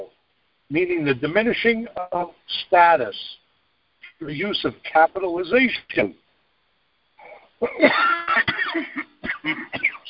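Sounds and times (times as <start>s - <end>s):
speech: 0.7s - 3.4s, 4.2s - 6.2s, 7.6s - 9.9s
harsh raspy coughing fit from smoke: 7.2s - 10.0s.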